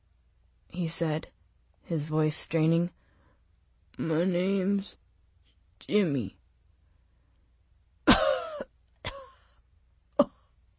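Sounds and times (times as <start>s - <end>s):
speech: 0.8s - 3.0s, 4.0s - 5.0s, 5.8s - 6.4s
man coughing: 8.1s - 9.4s.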